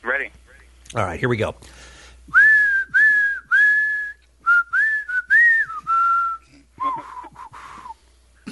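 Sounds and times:
speech: 0.2s - 1.9s
person whistling a rock song melody: 2.3s - 8.0s.

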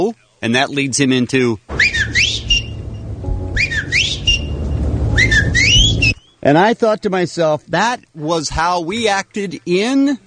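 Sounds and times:
speech: 0.0s - 1.8s, 6.4s - 10.2s
steady low hum: 1.6s - 6.6s
person whistling bird-like warbling trills: 1.8s - 2.8s, 3.5s - 6.4s.

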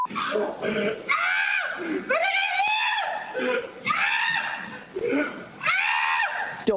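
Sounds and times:
man screaming while running from a goat: 0.2s - 4.7s, 5.6s - 6.5s.

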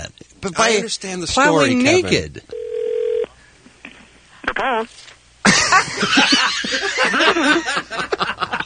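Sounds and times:
lively voices: 0.0s - 2.5s
speech: 0.4s - 2.6s, 4.6s - 5.2s, 5.8s - 7.9s
telephone tone as a phone call is placed: 2.5s - 3.3s
loud laughter: 5.5s - 8.6s.

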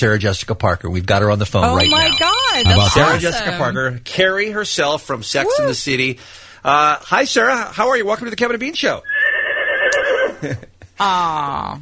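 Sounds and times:
speech: 0.0s - 9.1s, 10.4s - 11.7s
horse neighing: 9.0s - 10.4s.

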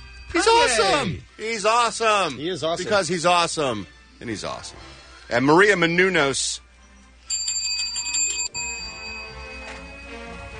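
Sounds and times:
bell ringing: 0.0s - 1.2s, 7.3s - 10.5s
speech: 0.3s - 6.6s.

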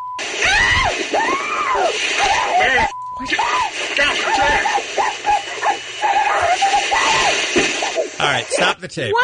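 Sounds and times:
woman outside a car screaming and wailing in a tantrum: 0.4s - 3.8s, 4.3s - 7.5s
speech: 8.6s - 9.1s.

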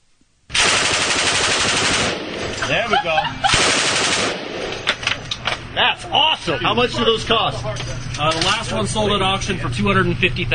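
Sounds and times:
automatic weapon firing: 0.5s - 2.8s, 3.5s - 5.2s
laughter: 2.6s - 3.6s
speech: 2.7s - 3.4s, 5.8s - 10.5s.

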